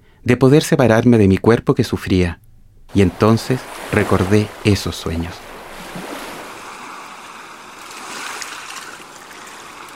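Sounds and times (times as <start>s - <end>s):
speech: 0.2s - 5.5s
ocean waves breaking: 2.9s - 9.9s.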